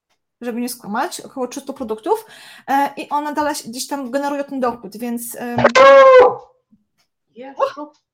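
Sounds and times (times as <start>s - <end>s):
speech: 0.4s - 6.5s, 7.4s - 8.1s
dog yelping: 5.6s - 6.4s.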